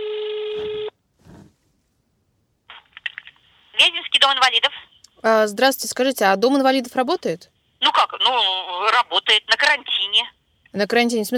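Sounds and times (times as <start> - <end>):
electronic phone tone: 0.0 - 0.9
speech: 4.4 - 11.3.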